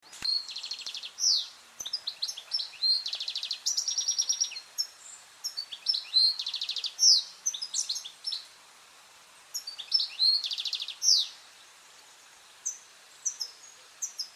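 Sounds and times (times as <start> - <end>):
European goldfinch giving tinkling buzzy twitters: 0.2 - 8.5, 9.5 - 11.4.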